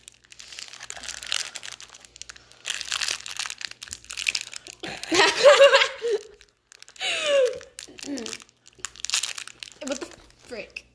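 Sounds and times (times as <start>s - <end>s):
plastic packaging crinkling as it is pulled and torn open: 0.0s - 10.6s
people laughing: 4.8s - 6.4s.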